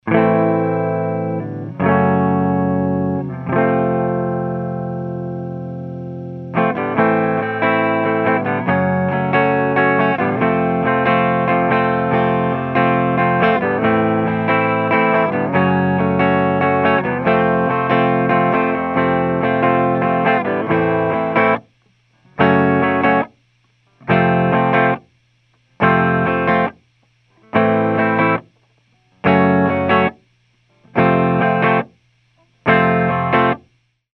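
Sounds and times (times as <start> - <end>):
clean amplifier tone recorded with FET condenser microphone: 0.0 - 34.0.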